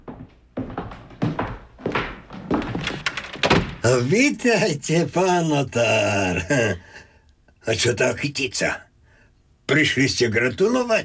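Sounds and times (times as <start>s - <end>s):
front door opening with heavy wooden thunks: 1.8s - 3.9s
speech: 3.8s - 6.9s, 7.7s - 8.9s, 9.7s - 11.0s.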